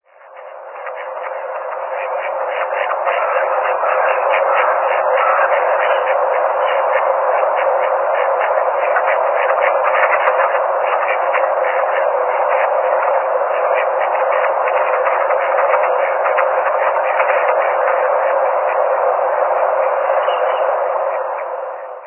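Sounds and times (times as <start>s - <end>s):
magamo singing: 0.2s - 19.0s, 19.6s - 21.5s.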